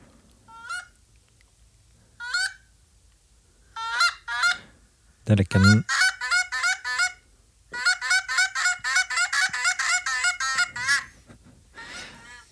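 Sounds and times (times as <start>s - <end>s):
Canada geese honking while landing, played from a mobile phone app: 0.5s - 0.9s, 2.2s - 2.6s, 3.7s - 4.7s, 5.5s - 11.2s, 11.8s - 12.4s
speech: 5.3s - 6.0s.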